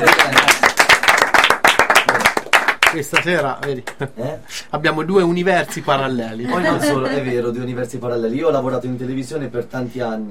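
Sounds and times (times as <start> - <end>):
audience applauding at a live event: 0.0 - 3.8
speech: 2.9 - 10.2
laughter: 5.6 - 7.6.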